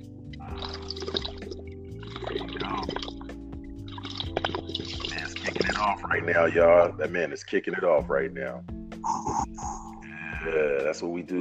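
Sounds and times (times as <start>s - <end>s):
water bubbling through a dab rig: 0.2s - 7.0s
speech: 5.8s - 8.7s, 10.5s - 11.3s.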